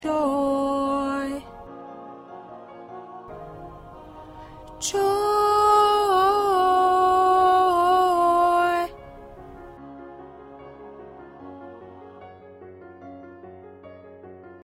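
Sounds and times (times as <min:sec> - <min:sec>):
soprano backing vocal: 0:00.0 - 0:12.2.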